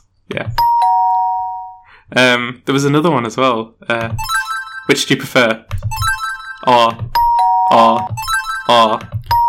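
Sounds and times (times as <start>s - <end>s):
doorbell chime: 0.6s - 1.8s, 4.2s - 5.1s, 5.9s - 9.4s
speech: 2.1s - 9.2s.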